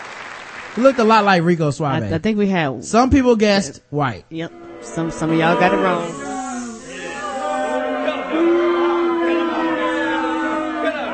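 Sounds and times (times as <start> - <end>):
speech: 0.8 - 6.2
displeased crowd booing: 4.5 - 11.1.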